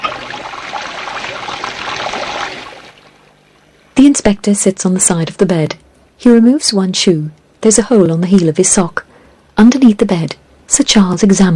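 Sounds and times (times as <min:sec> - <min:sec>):
water gushing from a bath tap into a bath: 0:00.0 - 0:03.1
speech: 0:04.0 - 0:11.5.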